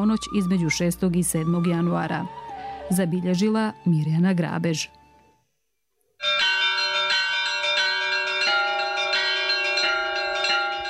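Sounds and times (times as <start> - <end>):
speech: 0.0 - 5.0
Serbian Orthodox church bells pealing in Banja Luka for Orthodox Christmas: 6.2 - 10.8.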